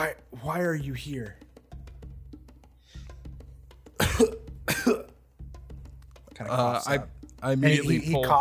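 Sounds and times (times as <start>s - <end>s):
speech: 0.0s - 1.5s, 4.2s - 5.1s, 6.4s - 8.3s
person performing wet coughs of a wounded character: 4.0s - 5.2s.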